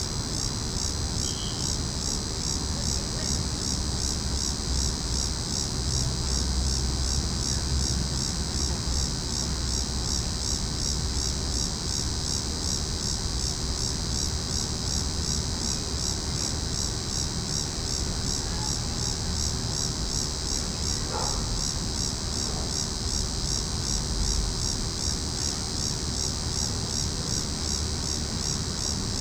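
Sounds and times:
several cicadas calling in a tree: 0.0 - 29.1.

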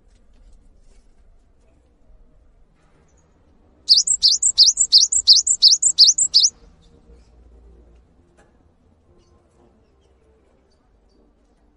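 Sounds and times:
Cinereous tit song of piercing two-note whistles: 3.9 - 6.5.

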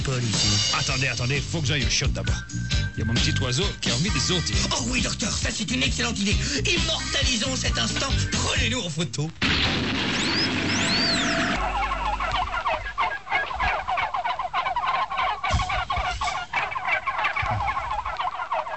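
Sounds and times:
speech: 0.0 - 10.0
turkeys gobbling: 3.5 - 8.6, 9.4 - 18.7.

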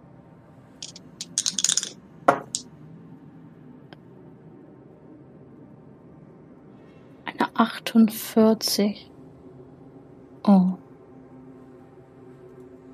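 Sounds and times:
dice rolled for a luck roll in a tabletop role-playing game: 0.8 - 2.6
speech: 7.6 - 9.1, 10.4 - 10.8.

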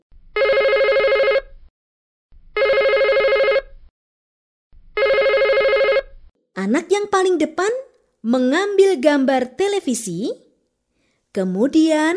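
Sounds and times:
telephone ringing with an electronic trill: 0.4 - 1.5, 2.6 - 3.7, 5.0 - 6.1
speech: 6.7 - 10.4, 11.4 - 12.1.

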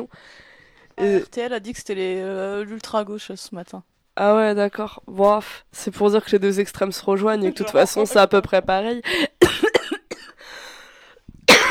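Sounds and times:
speech: 0.0 - 0.4, 1.0 - 9.4
person coughing: 9.4 - 10.4, 11.5 - 11.6.

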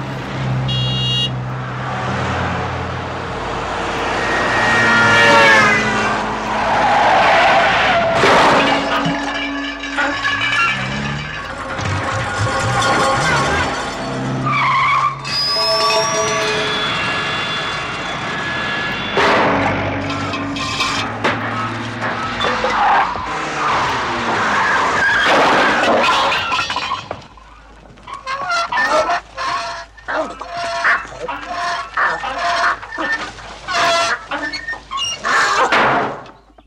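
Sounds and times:
car engines revving: 0.0 - 26.0
cars skidding in a film car sequence: 0.0 - 36.4
tires squealing in a film car sequence: 0.0 - 36.5.

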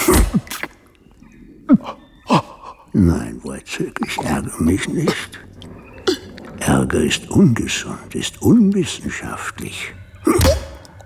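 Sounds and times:
person sneezing: 0.0 - 0.8, 10.3 - 10.8
speech: 1.7 - 2.0, 3.0 - 5.5, 6.6 - 10.6.

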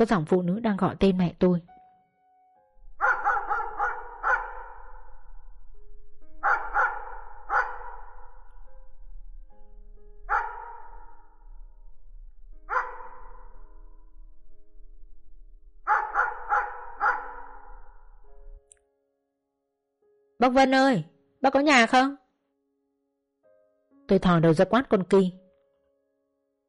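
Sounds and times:
speech: 0.0 - 1.7, 20.4 - 22.2, 24.1 - 25.4
dog barking in a yard: 3.0 - 5.1, 6.4 - 8.5, 10.3 - 11.3, 12.7 - 13.6, 15.9 - 18.0.

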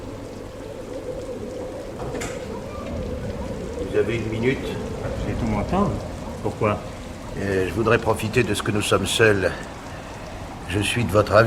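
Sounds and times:
storm rain beating against closed windows: 0.0 - 11.4
speech: 4.0 - 9.7, 10.7 - 11.4.

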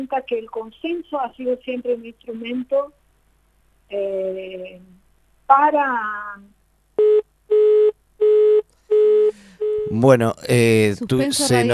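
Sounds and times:
speech: 0.0 - 3.0, 3.9 - 7.2, 9.8 - 11.7
telephone busy tone after a dropped call: 7.0 - 10.0.

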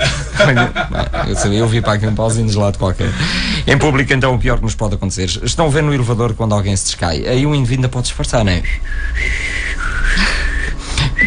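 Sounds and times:
laughter: 0.0 - 2.4
speech: 0.4 - 10.3
person whistling a short tune: 8.7 - 11.2.

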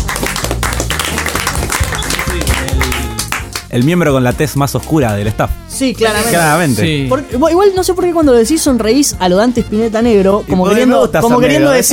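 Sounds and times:
applause for a participant being introduced: 0.0 - 5.0
speech: 3.7 - 11.9.

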